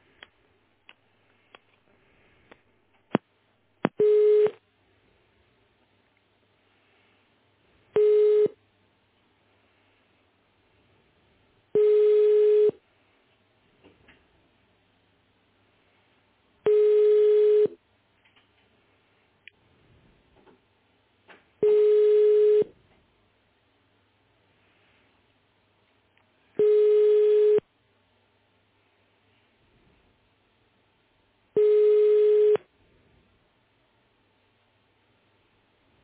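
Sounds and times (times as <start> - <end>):
telephone line tones while a call to technical support is transferred: 4.0 - 4.6, 8.0 - 8.6, 11.8 - 12.8, 16.7 - 17.8, 21.6 - 22.7, 26.6 - 27.6, 31.6 - 32.7.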